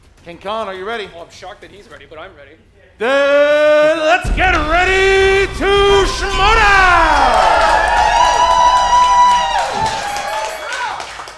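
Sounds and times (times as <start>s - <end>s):
speech: 0.2s - 6.7s
live crowd cheering and whooping: 5.4s - 11.3s.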